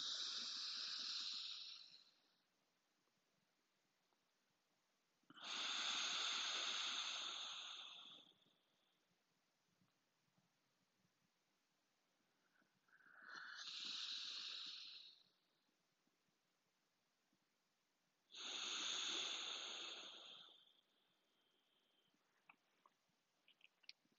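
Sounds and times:
slow alternate-nostril breathing exhales: 0.0 - 2.4, 5.3 - 8.9, 12.4 - 15.6, 18.3 - 22.1.

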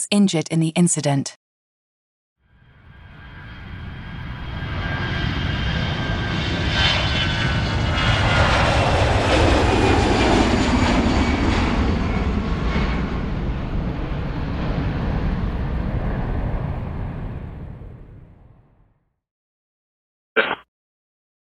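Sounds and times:
speech: 0.0 - 1.4
small propeller aircraft engine droning: 2.4 - 18.9
brief click: 20.4 - 20.6.

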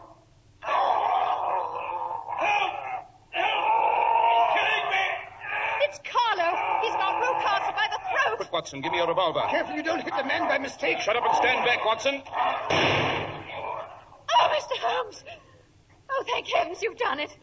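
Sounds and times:
dog barking and snarling fiercely while attacking a man: 0.6 - 14.2
frantic human voices: 0.6 - 16.8
speech: 8.7 - 13.0, 16.8 - 17.4.

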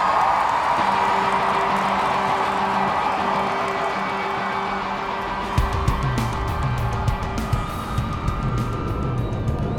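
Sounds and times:
large concert crowd roaring and cheering: 0.0 - 9.7.

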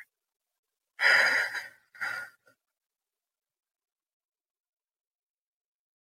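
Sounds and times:
slow deep breathing during a relaxation exercise: 1.0 - 2.5.

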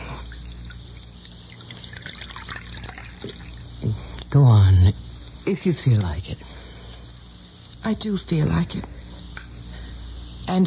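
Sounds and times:
coffee pouring into a cup: 0.4 - 3.6
speech: 4.4 - 6.6, 7.8 - 9.0, 10.5 - 10.6.

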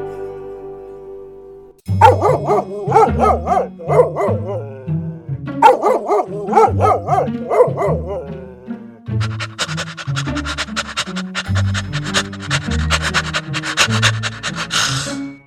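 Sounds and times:
dog barking and yipping: 1.9 - 4.9, 5.6 - 8.5, 9.2 - 15.1.

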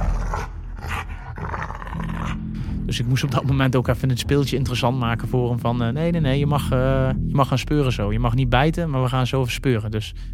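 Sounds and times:
dog growling low: 0.0 - 2.5
dog panting: 0.3 - 1.5
speech: 2.9 - 10.3.

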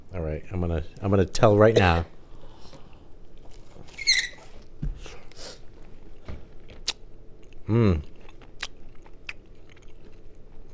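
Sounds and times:
speech: 0.1 - 2.2, 7.7 - 8.1
chewing pastry: 6.6 - 10.7
teeth biting into a brittle oven-crisped pastry shell: 8.1 - 10.7.

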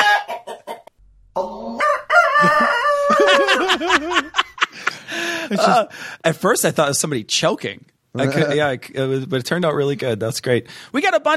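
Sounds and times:
rooster crowing: 0.0 - 0.8, 1.4 - 4.3
hens clucking: 0.0 - 3.8
laughter: 2.4 - 5.9
speech: 5.5 - 11.3.

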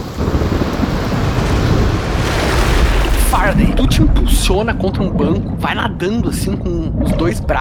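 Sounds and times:
huge ocean wave crashing: 1.3 - 4.6
speech: 3.5 - 7.5.

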